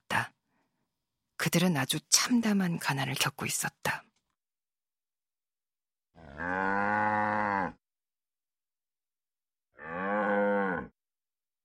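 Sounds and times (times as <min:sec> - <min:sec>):
speech: 0:01.4 - 0:04.0
dairy cow mooing: 0:06.2 - 0:07.8, 0:09.8 - 0:11.0.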